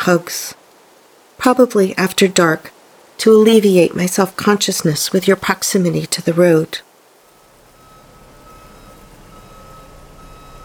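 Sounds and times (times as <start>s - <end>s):
speech: 0.0s - 0.6s, 1.4s - 6.9s
truck reversing alarm high-pitched tone: 7.6s - 10.6s.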